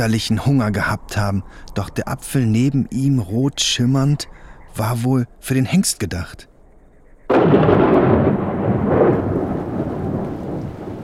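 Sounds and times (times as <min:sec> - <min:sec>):
speech: 0:00.0 - 0:06.5, 0:07.3 - 0:08.4
thunder rolling during a thunderstorm: 0:07.3 - 0:11.0.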